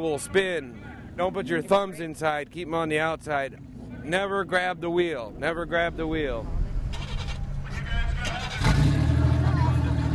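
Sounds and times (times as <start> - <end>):
speech: 0.0 - 6.6
car engines idling: 0.0 - 10.1
car engine revving: 6.0 - 10.1.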